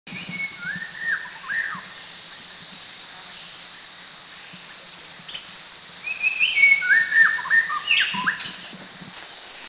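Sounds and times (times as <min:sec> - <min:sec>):
White-rumped Shama singing: 0:00.1 - 0:02.1, 0:05.3 - 0:08.7.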